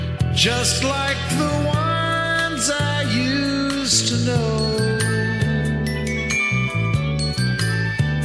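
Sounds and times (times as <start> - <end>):
full sustained musical backing with strings: 0.0 - 8.2
speech: 0.4 - 1.9, 2.6 - 5.1
bright tinkling Christmas bells and chimes: 3.2 - 8.2.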